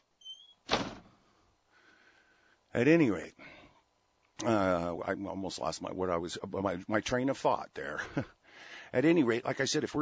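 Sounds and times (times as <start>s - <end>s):
door squeal: 0.0s - 1.0s
door being shut with a dull thud: 0.3s - 1.2s
speech: 2.8s - 3.4s, 4.4s - 10.0s.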